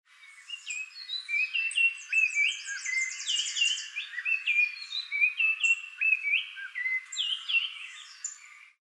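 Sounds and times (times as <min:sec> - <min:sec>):
Icterus chrysater calling: 0:00.2 - 0:08.8.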